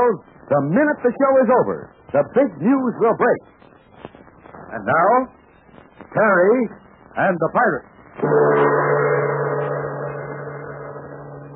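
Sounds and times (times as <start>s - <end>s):
speech: 0.0s - 3.6s, 4.7s - 5.4s, 6.1s - 8.7s
airplane engine drone: 8.2s - 11.5s.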